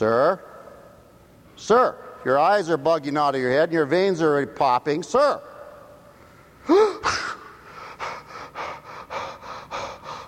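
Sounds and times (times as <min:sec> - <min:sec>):
speech: 0:00.0 - 0:00.5, 0:01.6 - 0:05.5
man gasping for air: 0:06.6 - 0:10.2
man panting with quick heavy breaths: 0:06.7 - 0:10.2.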